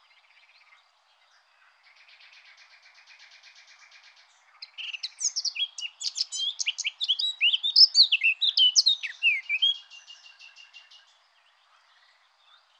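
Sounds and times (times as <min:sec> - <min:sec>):
Eurasian blackcap warbling song: 0:04.6 - 0:11.0.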